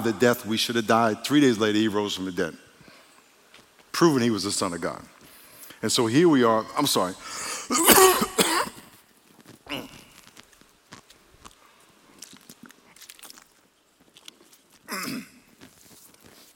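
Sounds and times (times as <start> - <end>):
speech: 0.0 - 2.7, 4.0 - 5.2, 5.8 - 8.3
man coughing: 7.4 - 8.9, 14.9 - 15.4
man clearing throat: 7.7 - 8.8, 14.9 - 15.4.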